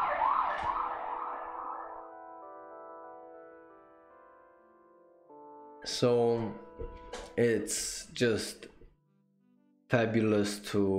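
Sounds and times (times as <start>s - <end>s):
police siren wailing: 0.0s - 2.3s
speech: 5.8s - 8.7s, 9.9s - 10.9s.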